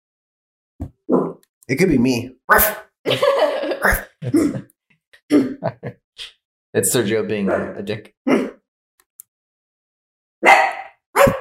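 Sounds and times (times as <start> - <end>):
speech: 1.7 - 4.7, 6.8 - 8.5
laughter: 3.1 - 4.7, 5.4 - 6.0
dog barking: 7.4 - 7.8, 10.4 - 11.3.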